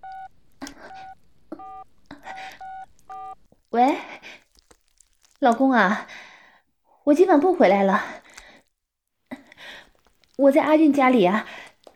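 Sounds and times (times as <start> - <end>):
mobile phone keypad dialing tones: 0.0 - 3.4
speech: 5.4 - 6.2, 7.1 - 8.2, 10.4 - 11.6.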